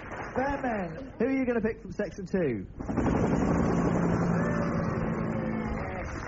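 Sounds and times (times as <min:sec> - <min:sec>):
speech: 0:00.4 - 0:03.6
helicopter on a school run flying overhead: 0:02.8 - 0:06.2.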